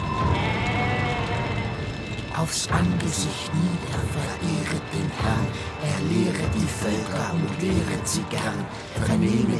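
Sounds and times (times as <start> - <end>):
herd of goats bleating: 0.2 - 1.8
speech: 2.4 - 9.5.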